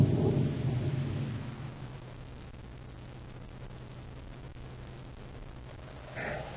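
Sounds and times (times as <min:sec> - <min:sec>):
thunder rumbling from an approaching storm: 0:00.0 - 0:02.4
rain-like hiss: 0:00.0 - 0:06.5.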